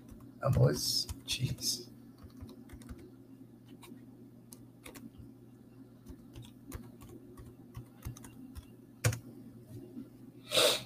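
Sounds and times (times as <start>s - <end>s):
typing an email on a computer keyboard: 0.0s - 1.6s, 2.2s - 3.1s, 3.7s - 5.2s, 6.0s - 9.2s
speech: 0.4s - 1.9s.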